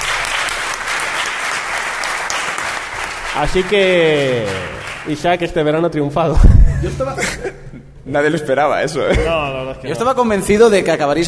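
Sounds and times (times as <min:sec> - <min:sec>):
crowd applauding two people: 0:00.0 - 0:05.2
speech: 0:03.4 - 0:11.2.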